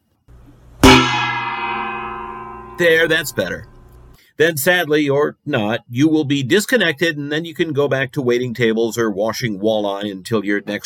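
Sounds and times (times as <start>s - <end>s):
single gong struck loudly: 0.8s - 4.1s
speech: 2.8s - 3.7s, 4.4s - 10.8s.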